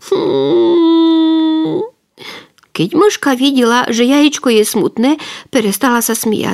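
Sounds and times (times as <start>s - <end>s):
voice imitating a crying, wailing painted Easter egg: 0.0s - 2.0s
speech: 2.8s - 6.5s.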